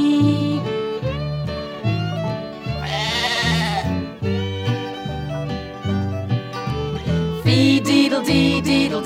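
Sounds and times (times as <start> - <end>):
bouncy steady-rhythm music: 0.0 - 9.0
woolly white sheep bleating: 2.7 - 4.1.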